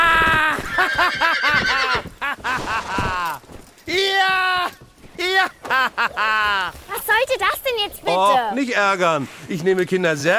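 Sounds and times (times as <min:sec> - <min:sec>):
laughter: 0:00.0 - 0:03.4, 0:04.2 - 0:06.8
ridden horse neighing in a long trembling whinny: 0:00.1 - 0:02.2
speech: 0:08.2 - 0:10.3.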